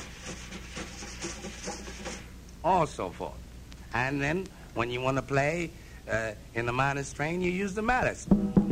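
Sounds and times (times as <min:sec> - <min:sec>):
hand-held wire brushes swishing across a drumhead imitating a train: 0:00.0 - 0:02.3
speech: 0:02.6 - 0:08.6.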